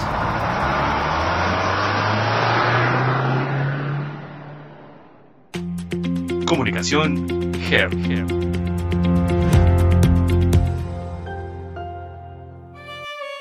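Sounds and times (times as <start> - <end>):
car engine starting and revving: 0.0 - 5.5
music: 5.6 - 13.3
speech: 6.5 - 8.6.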